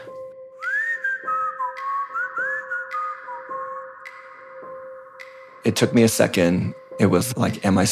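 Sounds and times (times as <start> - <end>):
person whistling an old-fashioned melody: 0.0 - 4.8
speech: 5.6 - 7.9.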